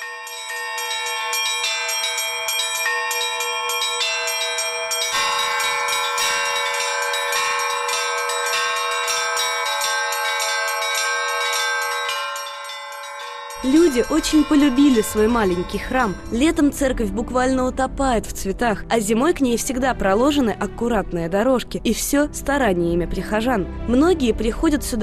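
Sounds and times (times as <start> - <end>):
church bells ringing from a bell tower: 0.0 - 17.8
speech: 13.7 - 25.0.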